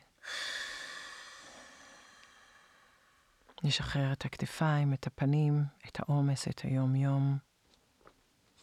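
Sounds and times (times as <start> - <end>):
deep inhale through nose and exhale through mouth: 0.0 - 3.6
speech: 3.6 - 7.5.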